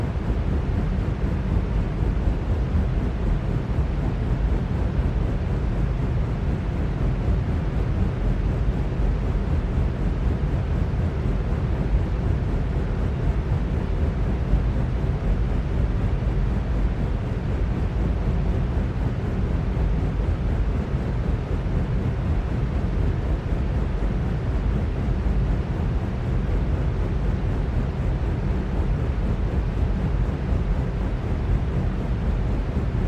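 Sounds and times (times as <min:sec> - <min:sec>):
ceiling fan whooshing with low rumbling hum: 0:00.0 - 0:33.0.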